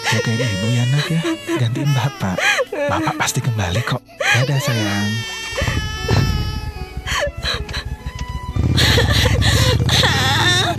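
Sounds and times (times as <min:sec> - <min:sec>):
person crying and sobbing with whimpers and gasping breaths: 0:00.0 - 0:08.0, 0:08.7 - 0:10.7
speech: 0:00.1 - 0:05.8.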